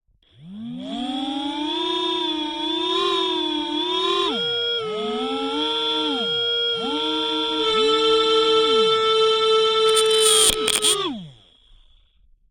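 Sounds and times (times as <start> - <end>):
quadcopter rotors running at various RPMs through a contact mic: 0.4 - 8.9, 9.7 - 11.4
scraping on contact microphone: 9.9 - 11.0.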